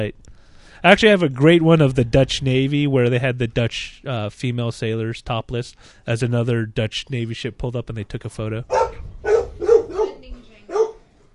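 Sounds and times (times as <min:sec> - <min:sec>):
speech: 0:00.0 - 0:09.4
dog barking: 0:08.7 - 0:11.1.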